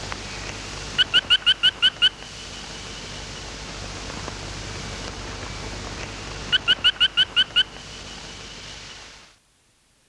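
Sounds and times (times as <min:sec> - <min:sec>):
soft continuous hiss: 0:00.0 - 0:10.0
Fry's frog whistled call: 0:01.0 - 0:02.2, 0:06.5 - 0:07.8.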